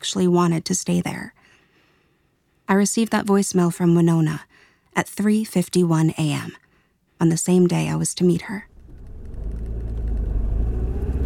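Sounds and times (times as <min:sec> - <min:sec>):
speech: 0:00.0 - 0:01.4, 0:02.7 - 0:06.6, 0:07.2 - 0:08.7
car engine rumbling while driving up to a park: 0:08.7 - 0:11.2.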